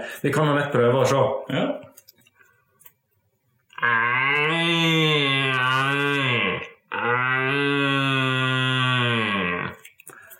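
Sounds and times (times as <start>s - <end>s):
speech: 0.0s - 2.0s
red deer stag roar imitated through a ribbed plastic tube: 3.7s - 9.9s.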